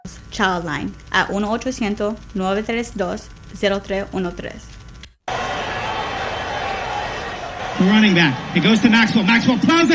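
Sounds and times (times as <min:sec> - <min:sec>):
speech: 0:00.4 - 0:04.8, 0:07.8 - 0:09.9
stadium crowd roaring and cheering: 0:05.3 - 0:09.9.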